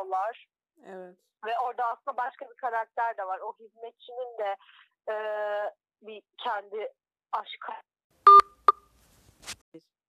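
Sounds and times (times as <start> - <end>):
speech: 0.2 - 7.9, 9.4 - 9.9
short loud electronic beep tones of a phone call disconnecting: 8.3 - 8.8
soft rustle: 8.9 - 9.6.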